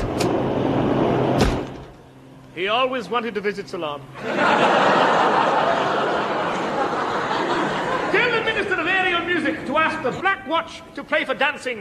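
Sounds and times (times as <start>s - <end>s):
door opening and closing: 0.0s - 0.4s, 1.3s - 2.0s
speech: 2.6s - 5.9s, 8.1s - 11.7s
laughter: 4.2s - 10.3s.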